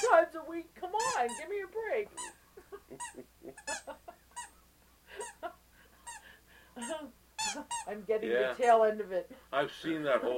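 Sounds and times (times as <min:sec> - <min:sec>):
squeaky toy squeaking: 0:00.0 - 0:00.2, 0:01.0 - 0:02.4, 0:03.0 - 0:04.6, 0:05.2 - 0:06.2, 0:06.8 - 0:08.0
speech: 0:00.1 - 0:02.4, 0:08.1 - 0:10.3.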